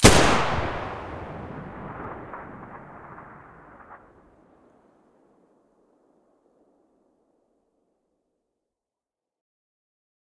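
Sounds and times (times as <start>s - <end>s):
G36 rifle muzzle blast in stereo: 0.0s - 4.7s.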